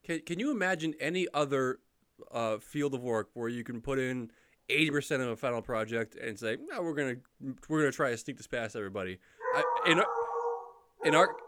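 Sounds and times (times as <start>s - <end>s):
speech: 0.1s - 10.2s, 11.0s - 11.4s
dog howling: 9.4s - 11.4s.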